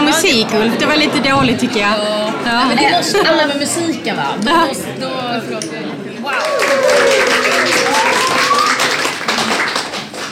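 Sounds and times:
speech: 0:00.3 - 0:08.5
audience applause: 0:06.2 - 0:10.2
audience voices and whoops: 0:06.3 - 0:09.1.

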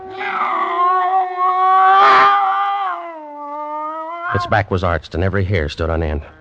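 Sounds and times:
cat yowling: 0:00.0 - 0:04.5
speech: 0:04.3 - 0:06.3.

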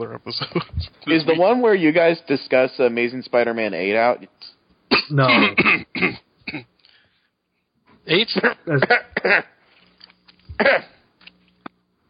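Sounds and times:
speech: 0:00.0 - 0:06.7, 0:08.0 - 0:09.5, 0:10.6 - 0:10.9
several people coughing and clearing throats: 0:04.9 - 0:06.7, 0:08.4 - 0:09.6, 0:10.5 - 0:11.0.

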